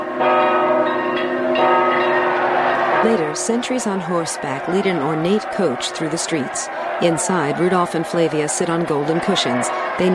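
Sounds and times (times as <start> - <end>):
church bells ringing in a tower atop a cathedral after a wedding: 0.0 - 10.1
speech: 3.0 - 10.1.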